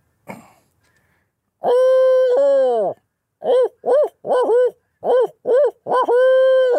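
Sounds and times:
person imitating an owl's hooting call: 0:01.6 - 0:06.7.

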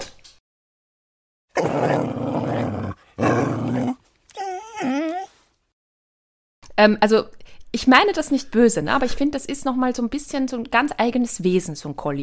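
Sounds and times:
dog growling low: 0:01.5 - 0:05.3
speech: 0:06.8 - 0:12.2.

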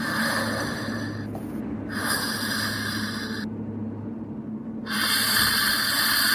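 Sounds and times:
voice imitating soft labored sleeping breath: 0:00.0 - 0:03.5, 0:04.8 - 0:06.3.

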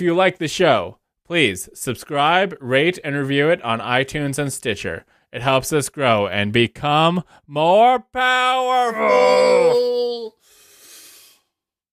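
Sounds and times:
speech: 0:00.0 - 0:10.4
person yawning while stretching: 0:08.9 - 0:11.4
soft breathy exhaling: 0:10.4 - 0:11.5.

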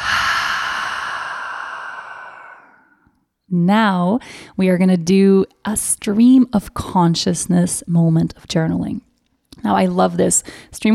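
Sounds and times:
long breathy exhale through an open mouth after a deep breath in: 0:00.0 - 0:03.0
speech: 0:03.5 - 0:10.9.

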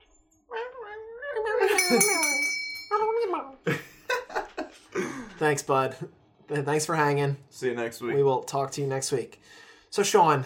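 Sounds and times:
speech: 0:01.5 - 0:02.4, 0:05.4 - 0:10.4
single bell strike ringing: 0:01.7 - 0:03.2.

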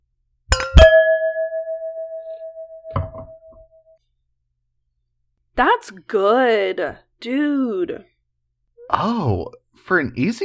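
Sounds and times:
wine glasses clinking in a toast: 0:00.5 - 0:03.4
speech: 0:05.6 - 0:08.1, 0:08.9 - 0:10.4.

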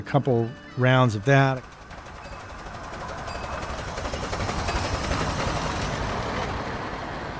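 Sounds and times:
speech: 0:00.0 - 0:01.7
steam train rumbling past: 0:00.0 - 0:07.3.

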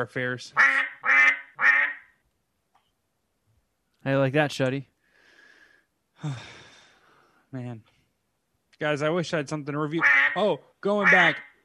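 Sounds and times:
speech: 0:00.0 - 0:00.9, 0:04.0 - 0:04.9, 0:06.2 - 0:06.6, 0:07.5 - 0:07.9, 0:08.8 - 0:11.6
Canada goose honking: 0:00.6 - 0:02.1, 0:10.0 - 0:10.4, 0:11.0 - 0:11.6.

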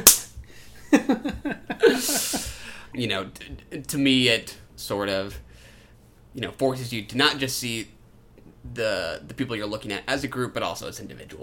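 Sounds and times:
sharp slap: 0:00.0 - 0:00.5
rhythmic voiced laughter-like sounds: 0:00.8 - 0:02.6
speech: 0:01.1 - 0:05.5, 0:06.4 - 0:08.0, 0:08.6 - 0:11.4.

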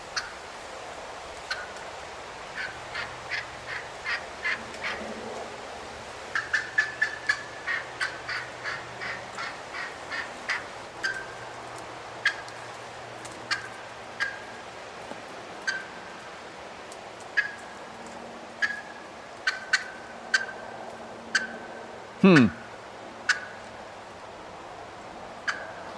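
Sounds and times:
wild turkey clucking: 0:00.2 - 0:00.4, 0:01.4 - 0:01.8, 0:02.6 - 0:05.0, 0:06.3 - 0:14.7, 0:15.6 - 0:16.3, 0:17.3 - 0:17.8, 0:18.6 - 0:22.5, 0:23.2 - 0:23.7, 0:25.4 - 0:25.9
speech: 0:22.3 - 0:22.6.

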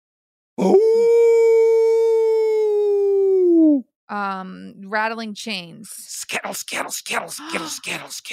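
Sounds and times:
speech: 0:00.6 - 0:01.0, 0:04.1 - 0:08.3
person imitating a menacing demon dog howl: 0:00.6 - 0:03.8.

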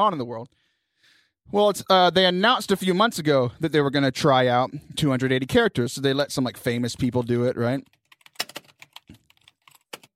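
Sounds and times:
speech: 0:00.0 - 0:00.6, 0:01.5 - 0:08.0
rapid typing on a computer keyboard: 0:07.8 - 0:10.1.

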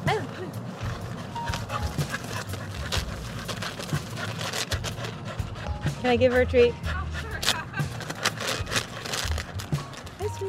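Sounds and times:
red-brown retriever dog whimpering with high rising whines at a park: 0:00.0 - 0:10.2
outdoor noise at a park: 0:00.0 - 0:10.4
speech: 0:06.0 - 0:06.8.

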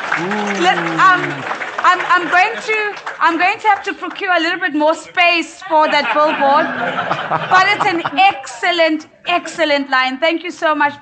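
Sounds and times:
person holding a long cheering call: 0:00.0 - 0:01.5
audience applause: 0:00.0 - 0:04.9, 0:06.1 - 0:08.4
laughter: 0:00.0 - 0:09.8
speech: 0:00.2 - 0:11.0.

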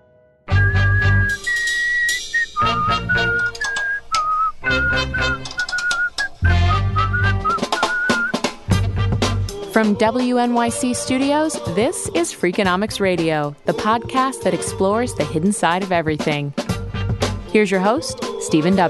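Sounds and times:
person whistling a bright bouncy melody: 0:00.5 - 0:08.5
steady backing music: 0:00.5 - 0:18.8
speech: 0:09.8 - 0:16.6, 0:17.5 - 0:18.8.

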